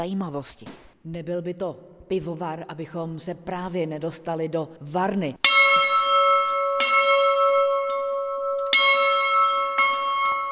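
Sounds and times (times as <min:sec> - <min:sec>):
speech: 0:00.0 - 0:05.5
large inscribed bell ringing in a brewery museum brewhouse: 0:05.4 - 0:10.4.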